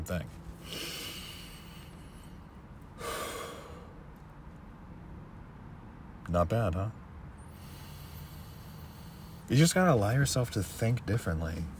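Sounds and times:
speech: 0.0s - 0.9s, 6.3s - 7.0s, 9.5s - 11.7s
deep breathing: 0.6s - 4.1s, 7.4s - 9.5s.

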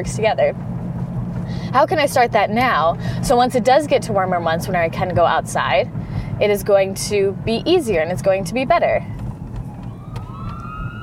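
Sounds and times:
speech: 0.0s - 0.7s, 1.4s - 9.2s
heavy low traffic rumble: 0.0s - 11.0s
ambulance siren wailing: 9.4s - 11.0s.

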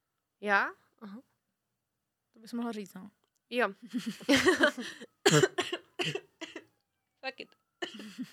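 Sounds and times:
speech: 0.4s - 1.3s, 2.4s - 6.2s, 7.2s - 8.3s
laughter: 3.9s - 5.1s
person coughing harshly: 5.2s - 6.7s.

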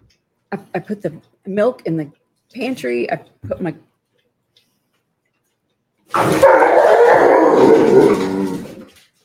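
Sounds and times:
speech: 0.5s - 3.9s, 6.1s - 6.6s
dogs howling: 6.2s - 8.9s.

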